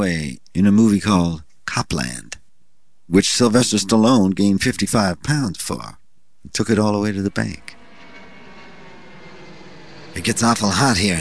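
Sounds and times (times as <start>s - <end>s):
speech: 0.0s - 2.3s, 3.1s - 7.8s, 10.2s - 11.1s
airplane engine roaring during takeoff: 6.6s - 11.1s.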